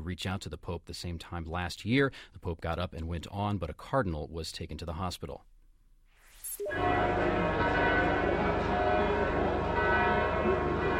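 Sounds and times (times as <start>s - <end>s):
speech: 0.1s - 5.5s
church bells ringing in Bethlehem for morning Mass: 6.6s - 10.9s.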